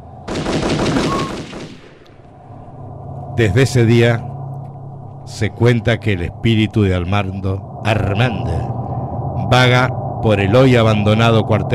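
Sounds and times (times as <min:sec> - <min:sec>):
gunshot from a weapon fired accidentally while being cleaned: 0:00.3 - 0:02.0
speech: 0:03.4 - 0:04.3, 0:05.3 - 0:08.6, 0:09.5 - 0:11.7.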